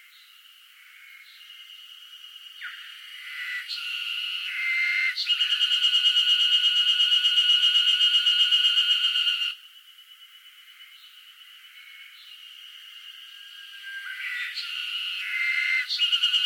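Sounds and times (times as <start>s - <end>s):
cicada song in northern Japan summer: 0.0s - 16.4s.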